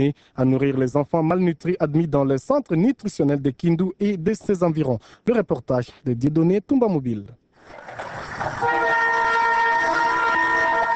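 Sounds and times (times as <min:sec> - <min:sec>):
speech: 0:00.0 - 0:08.5
locomotive horn of a humanitarian train arriving: 0:08.6 - 0:10.9.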